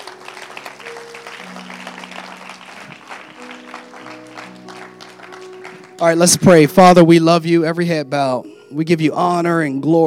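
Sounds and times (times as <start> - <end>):
audience clapping: 0.0 - 6.6
sustained organ or keyboard chords: 0.0 - 8.4
speech: 6.0 - 10.0.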